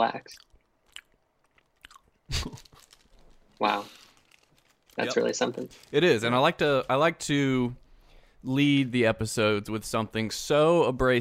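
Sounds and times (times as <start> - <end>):
speech: 0.0 - 0.5, 2.3 - 2.7, 3.6 - 4.0, 5.0 - 7.8, 8.4 - 11.1
fruit snacks crinkling and crunching in an ASMR-style recording: 0.4 - 7.2.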